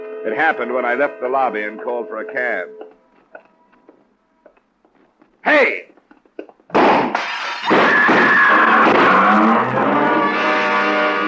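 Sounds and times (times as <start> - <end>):
speech: 0.2 - 2.8, 5.4 - 5.9
gunshots fired from a car: 6.7 - 11.1
harsh roar: 7.8 - 10.3.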